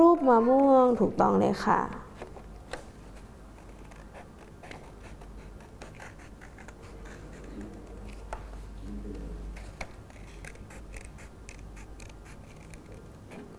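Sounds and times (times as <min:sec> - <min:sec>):
faint low hum: 0:00.0 - 0:13.5
speech: 0:00.2 - 0:02.0
scissors snipping through paper cutting out a mango shape: 0:03.5 - 0:08.5, 0:09.5 - 0:13.5.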